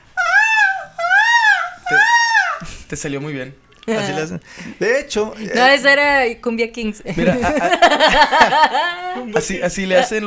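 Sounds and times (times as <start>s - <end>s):
person imitating a peacock's call with nasal wails: 0.1s - 2.7s
speech: 2.9s - 10.2s
laughter: 7.1s - 9.5s.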